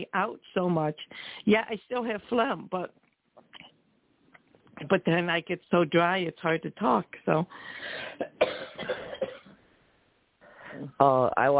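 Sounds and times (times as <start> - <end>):
speech: 0.0 - 3.7, 4.8 - 9.4, 10.8 - 11.5
person with a cold coughing chesty coughs: 8.0 - 9.5.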